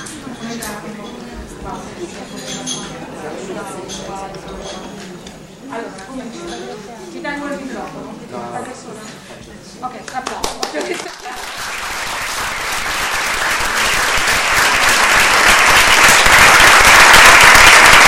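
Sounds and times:
audience applause at a cultural venue: 10.4s - 18.0s.

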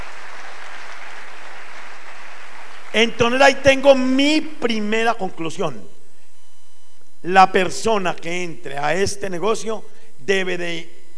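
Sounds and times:
audience applause at a sales and business seminar: 0.0s - 3.0s
speech: 2.9s - 6.0s, 7.2s - 11.0s.

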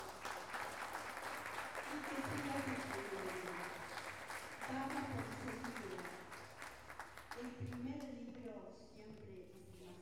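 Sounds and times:
audience clapping for teachers and children at an intercultural gathering: 0.0s - 7.8s.

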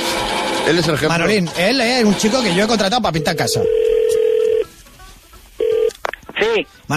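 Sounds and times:
speech: 0.7s - 4.0s, 6.6s - 6.9s
home telephone ringing with loud electronic bursts: 2.9s - 4.7s, 5.6s - 6.0s.

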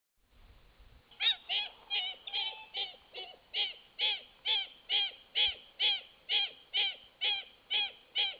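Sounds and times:
wattled jacana Jacana jacana jacana calling in harsh rasping notes: 1.2s - 8.3s.

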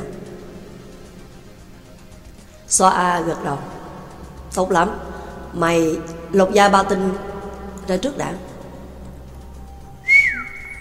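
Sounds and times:
speech: 2.7s - 3.8s, 4.5s - 7.3s, 7.9s - 8.5s
man whistling a single short note through pursed lips: 10.0s - 10.7s.

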